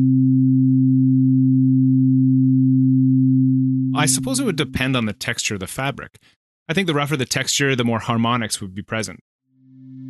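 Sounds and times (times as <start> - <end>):
low-pitched sine tone around 100 hertz: 0.0 - 5.0, 9.5 - 10.0
speech: 4.0 - 9.3.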